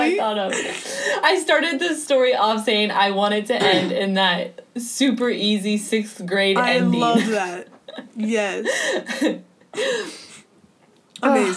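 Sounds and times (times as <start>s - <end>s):
speech: 0.1s - 10.2s, 11.2s - 11.5s
person clearing throat: 3.6s - 4.0s
laughter: 6.6s - 9.9s.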